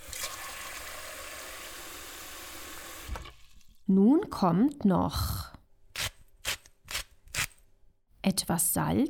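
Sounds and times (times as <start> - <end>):
tap water running into a pot: 0.0 - 3.8
speech: 3.9 - 5.5, 8.5 - 9.0.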